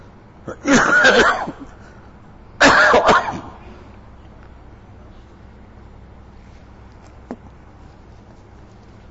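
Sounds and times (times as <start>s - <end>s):
speaker giving a talk coughing harshly: 0.5s - 1.8s, 2.6s - 3.6s.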